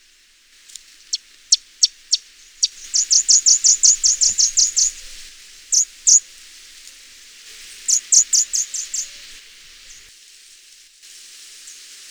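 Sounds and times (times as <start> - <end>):
orange bishop sharp very high ticks: 0.7 - 10.1.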